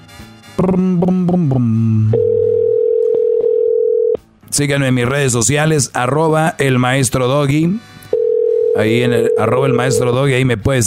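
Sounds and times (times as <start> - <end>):
speech: 0.2 - 2.5, 4.5 - 7.9, 8.8 - 10.8
telephone dial tone while dialing a call: 2.2 - 4.2, 8.2 - 9.4.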